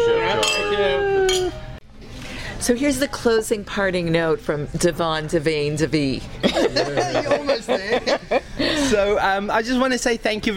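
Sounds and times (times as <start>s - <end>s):
glasses clinking in a toast: 0.4s - 1.7s
speech: 2.7s - 10.5s
laughter: 6.4s - 9.2s.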